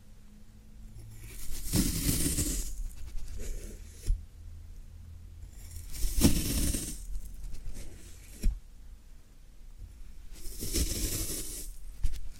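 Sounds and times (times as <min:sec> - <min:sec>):
faint low hum: 0:00.0 - 0:12.3
floral foam being handled, scraping and squeaking: 0:01.1 - 0:04.1, 0:05.5 - 0:08.6, 0:10.3 - 0:12.3.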